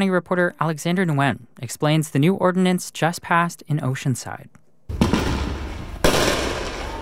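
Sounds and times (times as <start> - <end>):
speech: 0.0 - 5.1
illegal fireworks booming in residential backyards in Oceanside: 4.9 - 6.9.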